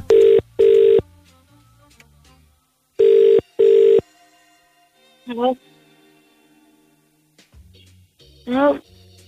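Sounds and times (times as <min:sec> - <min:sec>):
double-pulse telephone ringback tones on an outgoing call: 0:00.0 - 0:01.0, 0:03.0 - 0:04.1.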